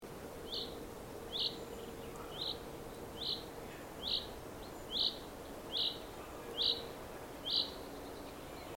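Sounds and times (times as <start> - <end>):
faint low hum: 0.1 - 8.7
common chaffinch call: 0.5 - 7.8.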